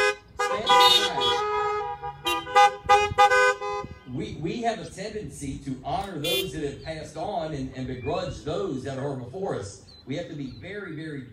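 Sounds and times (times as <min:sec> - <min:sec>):
car horns honking: 0:00.0 - 0:04.4, 0:06.0 - 0:06.8
speech: 0:04.6 - 0:11.3.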